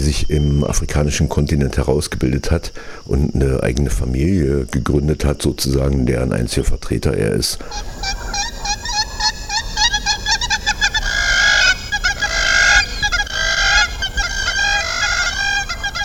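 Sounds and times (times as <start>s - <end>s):
speech: 0.0s - 8.5s
Hamerkop calling on the Congo River: 7.6s - 16.0s.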